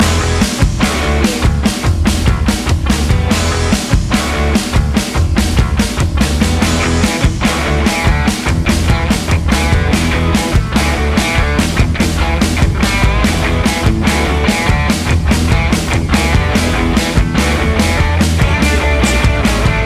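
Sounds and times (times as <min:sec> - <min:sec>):
rock commercial music loop: 0:00.0 - 0:19.8.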